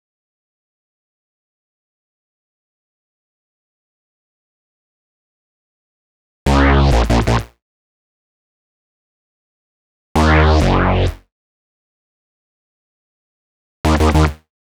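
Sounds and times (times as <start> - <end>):
130 BPM complex electro synth bass in D sharp minor: 6.5 - 7.5, 10.2 - 11.2, 13.9 - 14.4.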